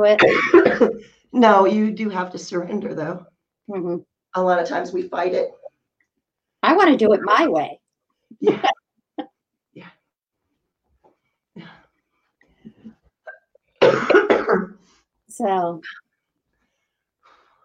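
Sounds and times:
speech: 0.0s - 5.6s, 6.6s - 10.0s, 15.4s - 16.0s
person clearing throat: 0.1s - 1.0s, 13.3s - 14.8s.

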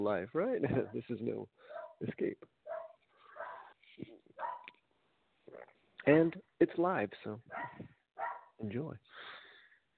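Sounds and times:
speech: 0.0s - 2.6s, 5.5s - 7.9s, 8.6s - 9.4s
dog barking and yelping: 1.6s - 2.0s, 2.6s - 3.8s, 4.4s - 4.8s, 7.5s - 8.6s.

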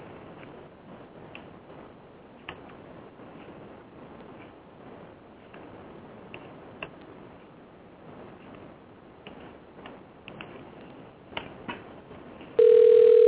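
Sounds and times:
hissy phone-line noise: 12.6s - 13.2s
loud steady telephone ringing tone: 12.6s - 13.2s.

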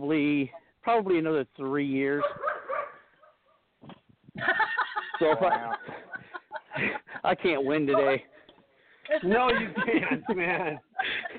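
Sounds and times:
speech: 0.0s - 2.5s, 5.2s - 6.0s, 6.8s - 8.4s, 9.1s - 11.2s
dogs barking: 2.2s - 3.7s
laughter: 4.4s - 8.3s, 9.1s - 11.3s.

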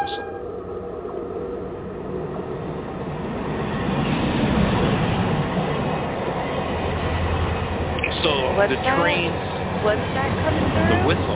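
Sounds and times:
faint train whistle: 0.0s - 0.7s
train rumbling and rattling past: 0.0s - 11.3s
speech: 8.6s - 11.3s.

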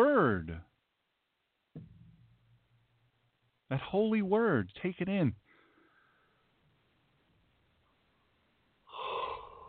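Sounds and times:
speech: 3.7s - 5.4s
deep breath in: 5.5s - 6.5s, 8.9s - 9.6s.

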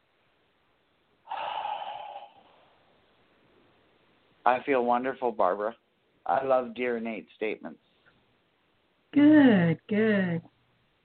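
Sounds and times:
deep breath: 1.3s - 2.9s
speech: 4.4s - 7.9s, 9.1s - 10.5s.

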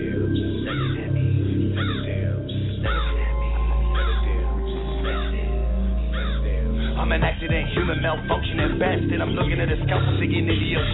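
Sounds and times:
crows cawing as they fly past a window: 0.5s - 7.2s
speech: 7.5s - 10.9s.

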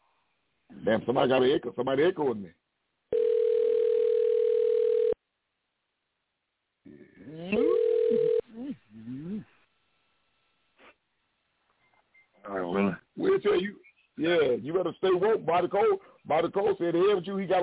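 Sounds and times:
speech: 0.8s - 2.6s, 13.4s - 17.6s
telephone ringing tone while dialing a call: 3.1s - 5.2s, 7.6s - 8.4s.

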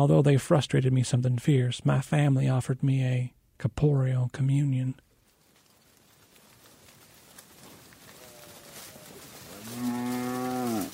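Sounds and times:
speech: 0.0s - 5.1s
cattle lowing in the open: 8.1s - 10.9s.

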